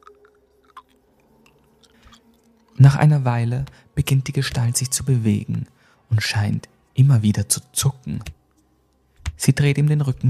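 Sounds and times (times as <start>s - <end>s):
teeth grinding together: 0.0s - 2.7s
speech: 2.8s - 8.4s, 9.4s - 10.2s.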